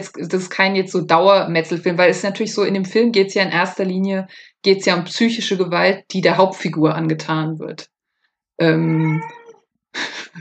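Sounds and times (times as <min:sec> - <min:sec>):
speech: 0:00.0 - 0:07.9, 0:08.6 - 0:10.3
cat meowing: 0:08.8 - 0:09.6.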